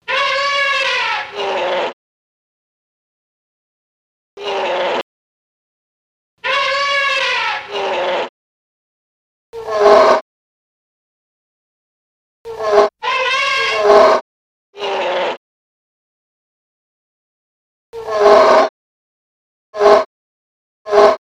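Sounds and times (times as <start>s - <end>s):
elephant sound: 0.1s - 2.0s, 4.4s - 5.0s, 6.4s - 8.3s, 9.6s - 10.2s, 12.5s - 14.2s, 18.0s - 18.7s, 19.8s - 20.1s, 20.9s - 21.2s.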